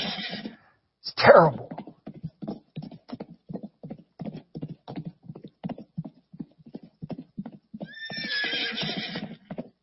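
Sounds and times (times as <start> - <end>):
hooves clip-clopping on a hard surface: 0.0 - 0.6, 1.4 - 9.8
horse whinnying: 0.0 - 0.6, 7.8 - 9.5
speech: 1.1 - 1.8.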